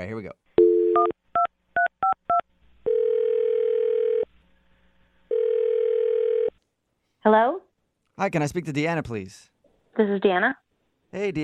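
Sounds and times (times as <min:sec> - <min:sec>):
speech: 0:00.0 - 0:01.2, 0:07.2 - 0:07.6, 0:08.2 - 0:11.4
telephone ringing tones: 0:02.0 - 0:04.3, 0:05.3 - 0:06.5.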